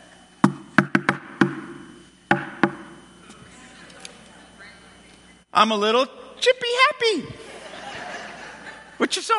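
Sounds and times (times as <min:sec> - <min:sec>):
rhythmic knocking on the wooden door of a house: 0:00.4 - 0:01.6, 0:02.3 - 0:02.8
speech: 0:05.6 - 0:07.4, 0:09.0 - 0:09.3
laughter: 0:07.3 - 0:09.3.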